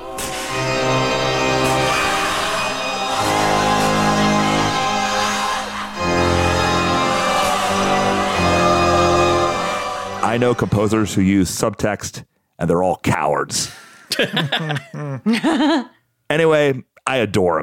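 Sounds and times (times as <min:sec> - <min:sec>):
pompous church organ chords: 0:00.0 - 0:11.5
speech: 0:10.4 - 0:17.6
laughter: 0:14.1 - 0:15.9.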